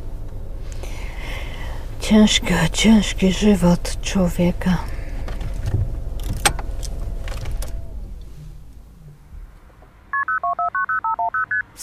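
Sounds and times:
mechanical rumble: 0.0s - 10.1s
speech: 2.1s - 4.9s
telephone keypad tones dialing a number: 10.2s - 11.7s.

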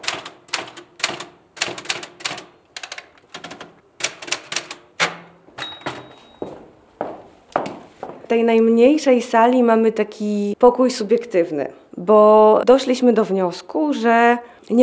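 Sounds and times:
typewriter keys clacking: 0.0s - 6.4s
typewriter carriage return bell ding: 3.4s - 6.5s
speech: 8.3s - 14.8s.

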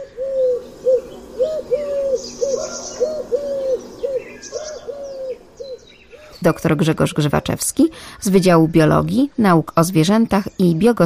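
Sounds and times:
Eurasian collared dove cooing: 0.0s - 7.6s
smaller birds chirping faintly: 0.0s - 11.0s
speech: 6.4s - 11.0s.

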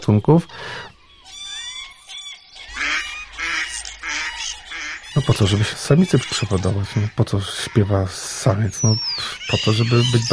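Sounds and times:
speech: 0.0s - 0.9s, 5.2s - 10.3s
starling mimicking other birds: 0.5s - 10.3s.

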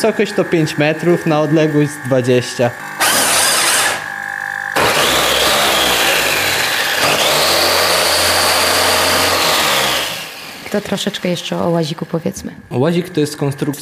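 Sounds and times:
speech: 0.0s - 3.0s, 10.7s - 13.8s
electric actuator running on a student-built ball-shooting robot: 0.0s - 13.5s.

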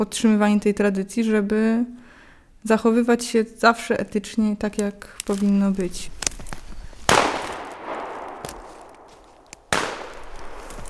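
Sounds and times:
speech: 0.0s - 2.0s, 2.6s - 6.2s
hunting gunshots with rolling echo across open space: 7.1s - 10.7s.

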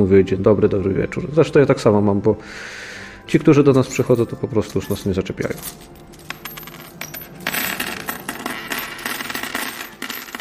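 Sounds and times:
speech: 0.0s - 6.0s
aluminium one-złoty and five-złoty coins from communist-era Poland clattering: 3.3s - 10.4s.

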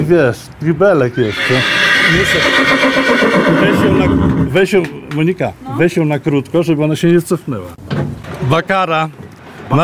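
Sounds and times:
speech: 0.1s - 9.8s
10-year-old Małopolski mare whinnying after breaking loose from her tether: 1.1s - 4.6s.

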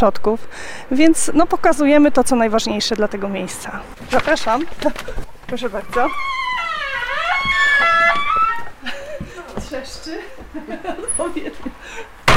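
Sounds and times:
speech: 0.0s - 6.4s, 9.7s - 12.2s
door creaking open: 4.0s - 8.8s
laughter: 8.5s - 9.5s, 10.1s - 12.2s.

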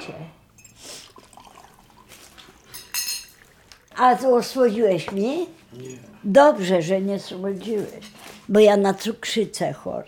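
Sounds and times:
speech: 0.0s - 0.4s, 4.0s - 10.0s
bright clink of crockery: 0.5s - 0.9s, 2.6s - 3.6s
water being poured into a cup: 0.5s - 4.6s.

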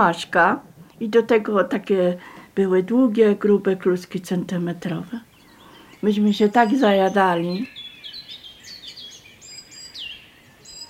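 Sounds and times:
speech: 0.0s - 5.3s, 6.0s - 7.8s
soft steady hiss: 0.0s - 10.8s
several birds singing outdoors in May on a small hill slope at Rybotycze: 4.6s - 10.8s.

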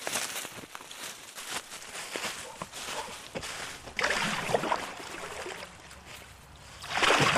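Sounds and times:
kayak paddle strokes splashing on the Wieprz River in Lublin Voivodeship, Poland: 3.7s - 6.1s, 6.7s - 7.3s
steady wash of moving river water: 3.8s - 7.3s.

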